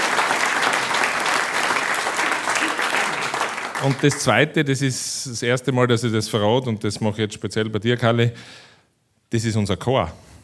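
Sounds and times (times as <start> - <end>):
audience applause: 0.0 - 4.3
speech: 3.8 - 8.7, 9.3 - 10.3.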